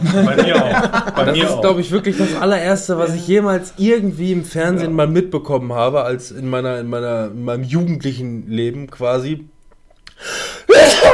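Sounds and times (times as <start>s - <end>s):
laughter: 0.0s - 2.5s
speech: 0.0s - 9.5s, 10.2s - 11.1s
loud sneeze: 10.7s - 11.1s.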